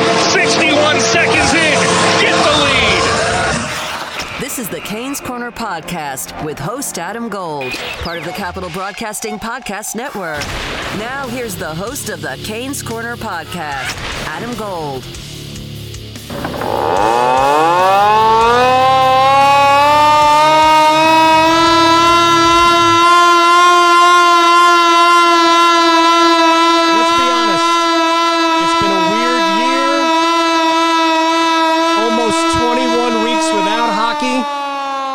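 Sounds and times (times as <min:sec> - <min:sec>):
hand-cranked siren wailing at a hockey arena: 0:00.0 - 0:05.2, 0:16.3 - 0:35.1
speech: 0:04.9 - 0:15.3.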